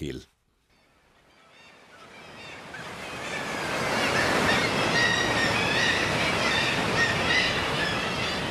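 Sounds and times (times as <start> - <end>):
speech: 0.0 - 0.3
sea waves crashing: 1.7 - 8.4
kittiwakes crying shrilly: 2.2 - 8.4.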